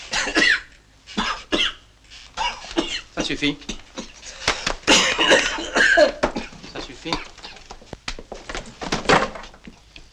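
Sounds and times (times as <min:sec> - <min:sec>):
patient coughing on command during a medical examination: 0:00.0 - 0:01.8, 0:02.4 - 0:07.7
speech: 0:03.2 - 0:03.7, 0:07.0 - 0:07.3.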